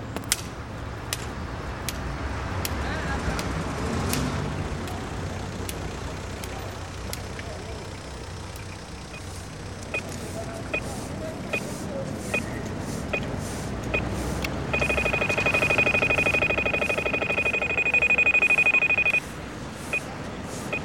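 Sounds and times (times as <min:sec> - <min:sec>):
street traffic rumble in Brussels: 0:00.0 - 0:20.8
audible pedestrian crossing signal ticking in Brussels: 0:05.6 - 0:11.7, 0:12.3 - 0:19.3
audible pedestrian crossing signal rapid electronic trill in Brussels: 0:14.8 - 0:19.2.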